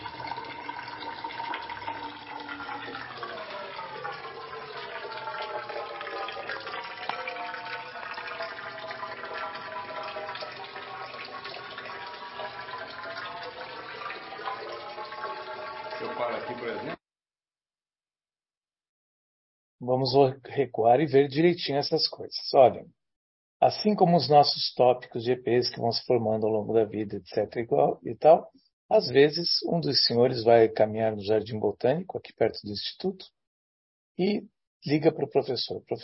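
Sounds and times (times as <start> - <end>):
steady stream of water pouring down from above: 0.0 - 17.0
speech: 19.9 - 23.0, 23.6 - 33.4, 34.2 - 36.0.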